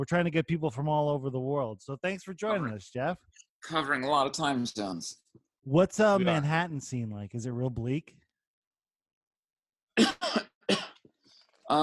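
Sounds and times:
speech: 0:00.0 - 0:08.2, 0:11.7 - 0:11.8
harsh coughs: 0:10.0 - 0:11.0.

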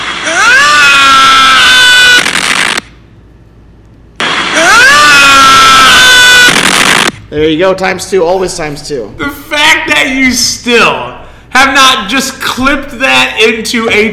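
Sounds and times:
loud shrill scream sound effect: 0:00.0 - 0:02.8, 0:04.2 - 0:07.1
speech: 0:07.3 - 0:09.4, 0:10.0 - 0:14.1.

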